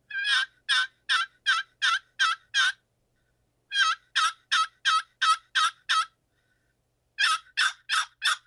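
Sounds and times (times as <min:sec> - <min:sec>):
turkey tree yelps made by hand on a turkey call: 0:00.1 - 0:02.8, 0:03.7 - 0:06.2, 0:07.2 - 0:08.4.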